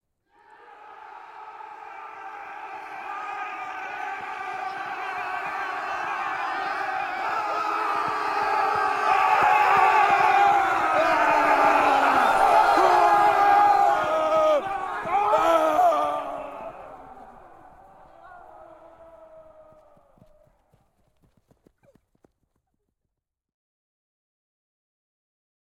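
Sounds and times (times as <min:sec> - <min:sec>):
outdoor battle crowd approaching: 0:00.3 - 0:20.4.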